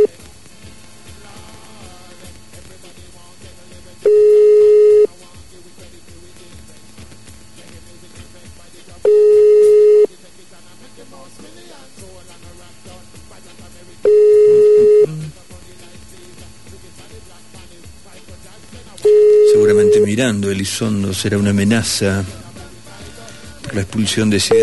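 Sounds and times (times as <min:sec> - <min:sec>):
telephone call tone beeps after hang-up: 0:04.0 - 0:05.1, 0:09.0 - 0:10.1, 0:14.0 - 0:15.3, 0:19.0 - 0:20.3, 0:24.4 - 0:24.6
speech: 0:20.2 - 0:22.4, 0:23.8 - 0:24.6.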